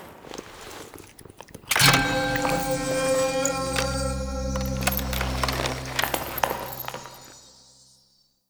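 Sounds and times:
gameplay music stinger: 0:01.8 - 0:07.9.

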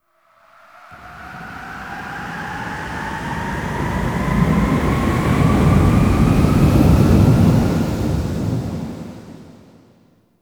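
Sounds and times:
exterior wind gust: 0:00.3 - 0:09.8.

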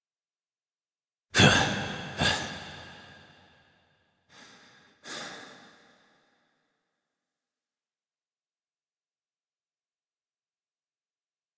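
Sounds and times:
breaths during an embrace in gameplay: 0:01.4 - 0:03.6, 0:04.3 - 0:06.5.

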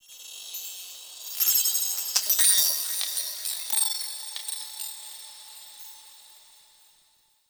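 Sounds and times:
small glass texture ambience: 0:01.2 - 0:05.8.

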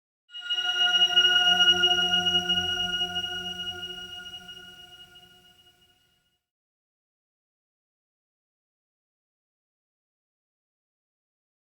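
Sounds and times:
dojo high bell: 0:00.4 - 0:05.7.

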